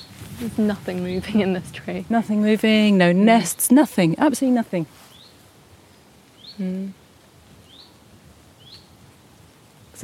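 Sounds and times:
speech: 0.4s - 5.0s, 6.6s - 7.0s
lone bird giving thin rising chirps: 6.4s - 6.9s, 7.6s - 8.0s, 8.6s - 8.9s
low voiced hum: 6.6s - 7.0s.

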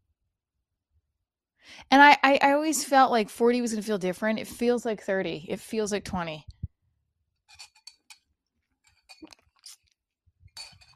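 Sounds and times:
speech: 1.7s - 6.6s
metal straw clinking and rattling against a wine glass: 7.5s - 8.1s, 10.6s - 10.9s.

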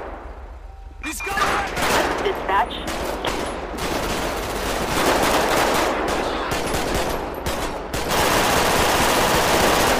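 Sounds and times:
speech: 1.2s - 1.5s, 2.3s - 3.6s
heavy automatic gunfire in a police video game shootout: 2.9s - 9.9s.

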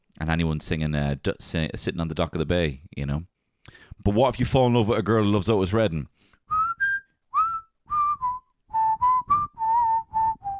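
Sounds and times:
speech: 0.2s - 6.2s
person whistling a tune: 6.5s - 10.5s.

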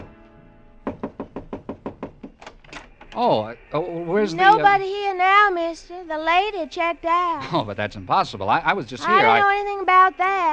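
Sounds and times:
knocking on a wooden hotel room door: 0.8s - 2.5s
speech: 3.2s - 10.5s.

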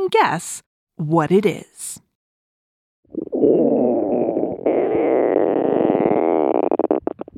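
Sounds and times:
speech: 0.1s - 2.0s
loud gurgling stomach rumble: 3.1s - 7.3s.

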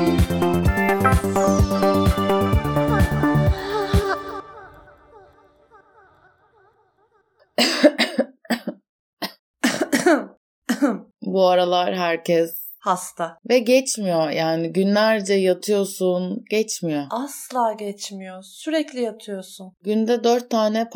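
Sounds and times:
music: 0.0s - 5.4s
harsh hacking coughs: 7.6s - 11.0s
speech: 11.4s - 20.9s.

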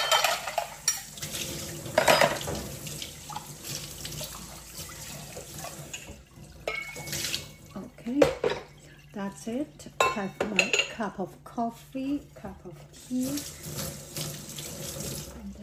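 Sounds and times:
glass clinking and knocking against the sink and dishes: 0.0s - 1.1s, 2.0s - 2.6s, 5.9s - 7.2s, 10.0s - 11.0s
water running from a tap at a sink: 0.0s - 9.9s, 12.2s - 15.6s
speech: 9.4s - 14.0s.

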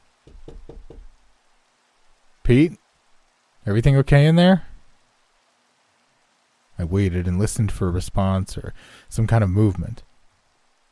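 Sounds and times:
knocking on a bathroom door: 0.2s - 1.1s
speech: 2.5s - 2.8s, 3.6s - 4.7s, 6.8s - 10.1s.

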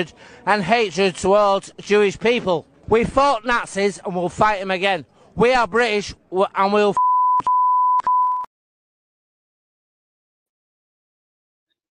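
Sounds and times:
speech: 0.0s - 7.5s
high-pitched electronic censor bleep tone over speech: 7.0s - 8.5s.

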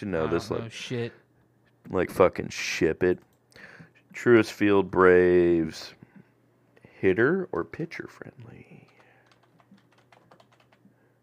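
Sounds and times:
speech: 0.0s - 1.2s, 1.8s - 6.0s, 7.0s - 8.9s
typing on a computer keyboard: 8.8s - 11.2s.

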